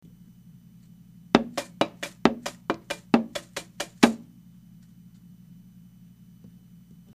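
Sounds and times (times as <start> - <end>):
taiko drums struck with a super ball and a plastic bottle brush stick: 1.4 - 4.2.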